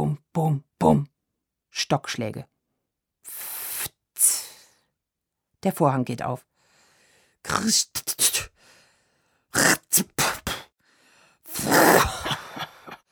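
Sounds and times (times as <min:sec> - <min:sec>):
speech: 0:00.4 - 0:01.1, 0:01.7 - 0:02.5, 0:05.6 - 0:06.5, 0:07.4 - 0:08.3, 0:09.5 - 0:10.2
breathy nose blowing: 0:03.3 - 0:04.4, 0:11.5 - 0:12.1
harsh coughing: 0:11.5 - 0:13.0.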